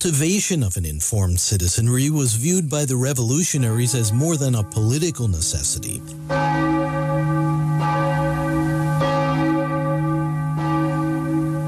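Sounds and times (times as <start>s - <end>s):
speech: 0.0s - 7.0s
large deep Liberty Bell tolling in Philadelphia: 3.3s - 11.6s.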